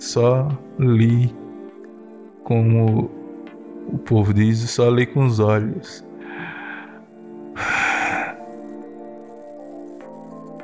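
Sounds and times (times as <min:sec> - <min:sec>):
speech: 0:00.1 - 0:01.4, 0:02.5 - 0:03.2, 0:03.9 - 0:06.1
heavy rasping exhale: 0:06.2 - 0:07.0, 0:07.6 - 0:08.6
person inhaling: 0:06.2 - 0:08.6.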